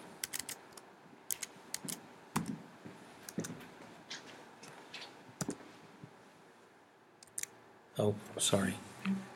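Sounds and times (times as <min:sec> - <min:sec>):
typing on a computer keyboard: 0:00.2 - 0:00.6, 0:01.3 - 0:02.5, 0:07.2 - 0:07.5
speech: 0:08.0 - 0:09.2.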